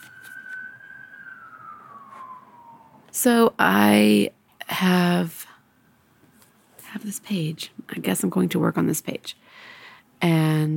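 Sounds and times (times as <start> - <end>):
emergency siren wailing as it passes by outside: 0.0 - 3.6
faint noise: 0.0 - 10.7
speech: 3.2 - 5.4, 7.0 - 10.7.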